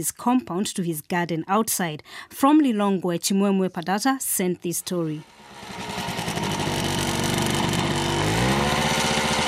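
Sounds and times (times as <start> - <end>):
speech: 0.0 - 6.0
motorcycle engine driving an irrigation pump watering tomato rows: 5.2 - 9.4.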